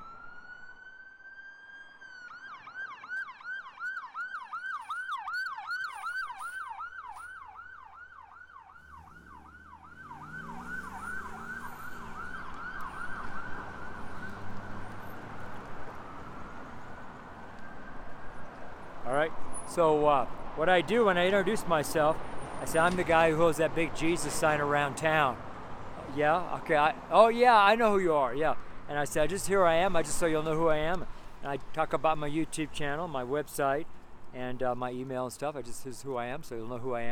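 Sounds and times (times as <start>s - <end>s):
emergency vehicle siren wailing and yelping: 0.0s - 19.0s
traffic rumble: 4.2s - 37.0s
speech: 19.2s - 25.5s, 26.1s - 37.0s.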